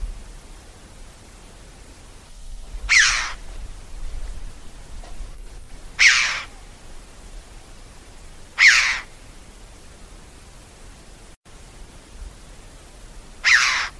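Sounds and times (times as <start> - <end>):
background hiss: 0.0 - 13.9
bird giving harsh rasping calls: 2.9 - 3.4, 6.0 - 6.5, 8.6 - 9.1, 13.4 - 13.9.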